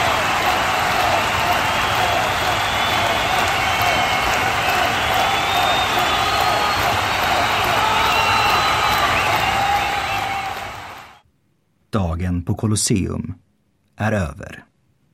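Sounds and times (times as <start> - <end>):
large arena crowd roaring, cheering and chanting rhythmically: 0.0 - 11.2
speech: 11.9 - 14.7.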